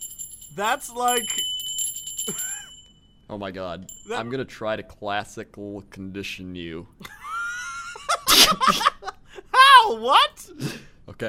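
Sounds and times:
bright high bell ringing: 0.0 - 4.5
speech: 0.6 - 1.6, 2.3 - 2.5, 3.3 - 7.2, 8.5 - 9.0, 9.8 - 11.2
laughter: 7.0 - 9.4.

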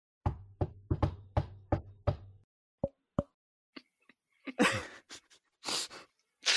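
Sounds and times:
hollow knocking imitating a knock on a door: 0.2 - 2.4.

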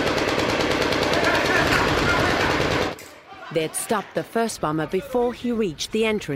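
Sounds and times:
automatic gunfire from several weapons: 0.0 - 3.0
speech: 3.6 - 6.3.

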